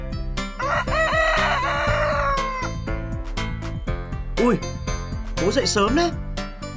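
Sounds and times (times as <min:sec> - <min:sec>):
music with rhythmic percussive hits: 0:00.0 - 0:06.7
rooster crowing: 0:00.6 - 0:02.8
speech: 0:04.4 - 0:04.8, 0:05.4 - 0:06.2.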